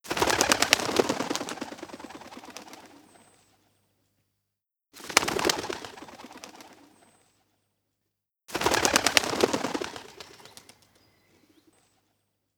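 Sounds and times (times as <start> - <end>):
bird wings flapping: 0.1 - 3.5, 5.0 - 7.2, 8.5 - 12.0.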